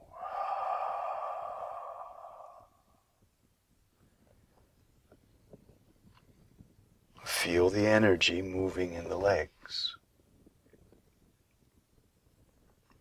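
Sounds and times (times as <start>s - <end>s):
held breath released in one long exhale during guided muscle-tensing relaxation: 0.0s - 3.1s
speech: 7.4s - 10.0s.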